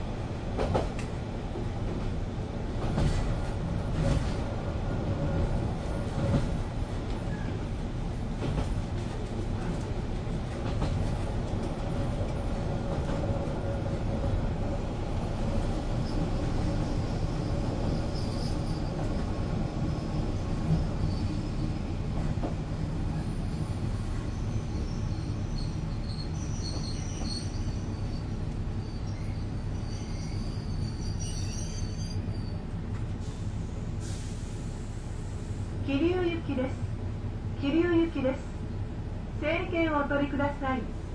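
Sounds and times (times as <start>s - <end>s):
local train rumbling heard from inside a carriage: 0.0s - 41.1s
metallic squeals: 23.6s - 32.6s.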